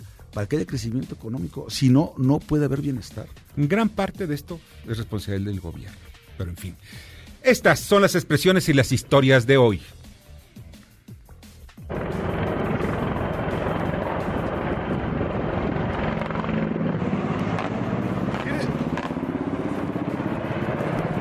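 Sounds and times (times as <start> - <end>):
speech: 0.4 - 10.1
roar of missiles flying overhead over Baghdad: 11.9 - 21.1.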